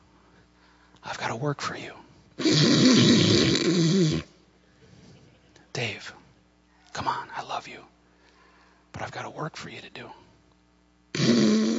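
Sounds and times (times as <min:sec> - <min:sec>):
speech: 0:01.1 - 0:04.3
person mimicking snoring with a rumbling voiced snore: 0:02.4 - 0:04.3, 0:11.1 - 0:11.7.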